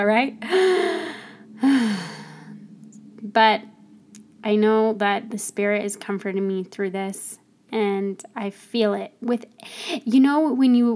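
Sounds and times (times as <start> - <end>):
speech: 0.0 - 1.0, 3.4 - 3.7, 4.4 - 10.9
deep breath taken to calm down: 0.4 - 2.6.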